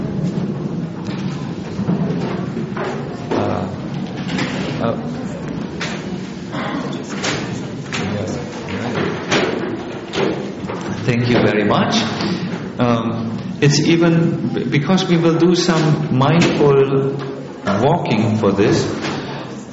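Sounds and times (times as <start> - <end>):
plastic chairs being shifted and stacked: 0.0 - 4.9, 5.6 - 12.8, 15.6 - 18.0, 18.6 - 19.6
faint murmur of voices in the room: 0.0 - 19.7
speech: 4.8 - 5.2, 11.4 - 19.1.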